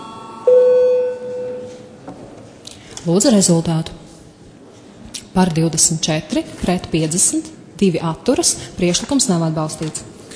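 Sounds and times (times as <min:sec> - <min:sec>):
electronic parliament voting bell tone: 0:00.0 - 0:02.0
speech: 0:03.0 - 0:04.0, 0:05.4 - 0:10.3.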